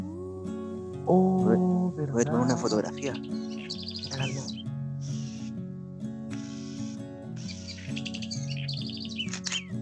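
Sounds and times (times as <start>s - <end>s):
steady low drone: 0.0s - 5.6s
house wren singing high quick chirps and trills: 0.0s - 5.7s, 6.4s - 9.8s
speech: 1.0s - 3.6s, 4.2s - 4.7s.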